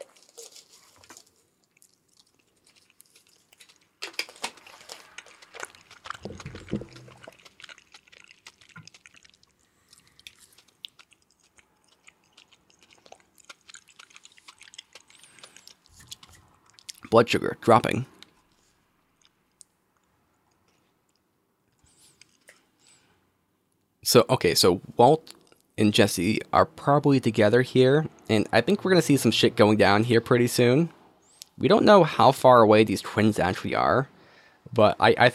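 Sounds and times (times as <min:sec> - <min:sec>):
wet chewing of gummy candies with sticky smacks: 0:00.0 - 0:17.1, 0:18.0 - 0:22.8
speech: 0:17.1 - 0:18.2, 0:24.1 - 0:25.2, 0:25.8 - 0:31.0, 0:31.6 - 0:34.1, 0:34.7 - 0:35.3.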